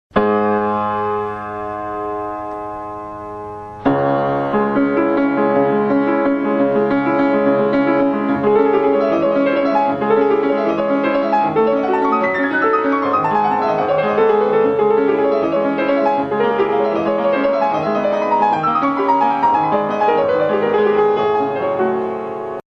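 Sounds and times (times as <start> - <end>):
Steinway piano: 0.1 - 22.7.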